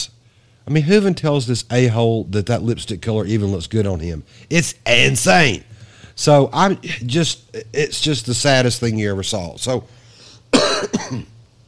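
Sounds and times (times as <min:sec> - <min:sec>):
speech: 0:00.7 - 0:10.0, 0:10.8 - 0:11.3
person coughing harshly: 0:10.5 - 0:11.4.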